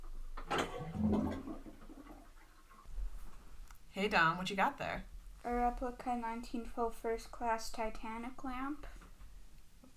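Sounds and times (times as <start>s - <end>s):
bathtub water draining: 0.0s - 4.6s
speech: 4.0s - 8.9s.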